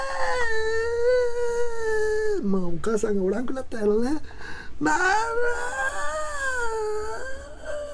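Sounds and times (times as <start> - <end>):
voice imitating the wailing cry of a toddler: 0.0 - 2.4, 4.8 - 7.9
speech: 2.4 - 5.9.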